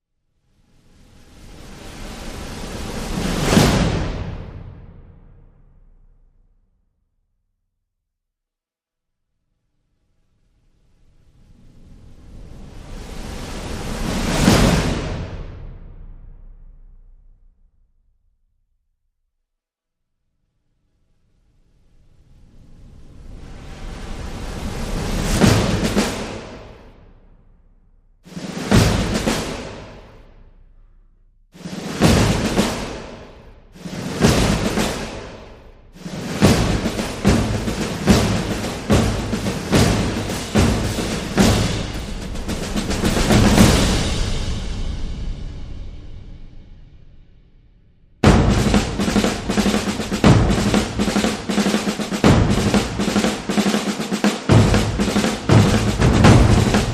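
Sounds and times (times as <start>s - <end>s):
drums: 0.5s - 6.4s, 10.8s - 17.6s, 21.8s - 56.9s.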